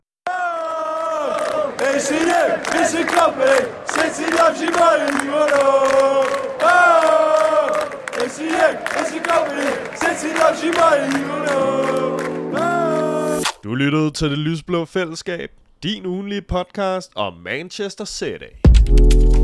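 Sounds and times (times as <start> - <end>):
large crowd singing a football chant in unison: 0.3 - 13.4
speech: 1.8 - 6.4, 8.3 - 12.6, 13.6 - 19.3.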